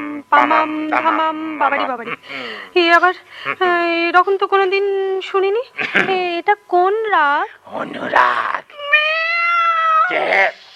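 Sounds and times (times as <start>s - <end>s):
speech: 0.0s - 8.7s, 10.1s - 10.6s
cat meowing loudly: 8.8s - 10.3s.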